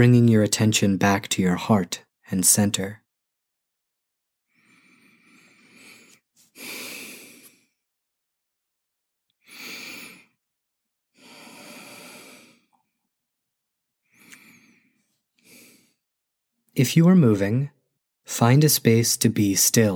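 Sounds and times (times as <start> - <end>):
speech: 0.0 - 3.0, 16.8 - 19.9
slow deep human breathing: 4.5 - 7.8, 9.4 - 10.5, 11.1 - 13.0, 14.0 - 16.0.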